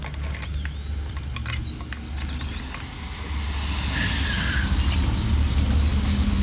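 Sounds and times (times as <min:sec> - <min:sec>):
keys jingling and scratching against a car door lock: 0:00.0 - 0:02.9
steady low rumble of traffic: 0:00.0 - 0:06.4.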